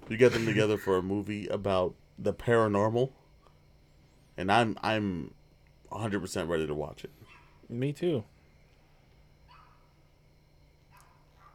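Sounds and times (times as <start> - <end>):
speech: 0.1 - 3.2, 4.4 - 8.3
neighbor's dog barking: 7.2 - 7.7, 9.4 - 10.1, 10.9 - 11.5.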